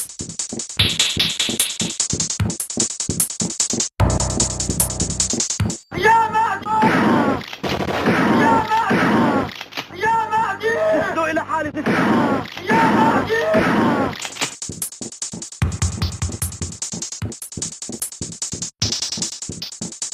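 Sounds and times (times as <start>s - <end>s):
music with wavering tones and rumbling bursts: 0.0s - 8.0s, 9.5s - 20.1s
rapid gunshot sound effects: 6.8s - 9.8s.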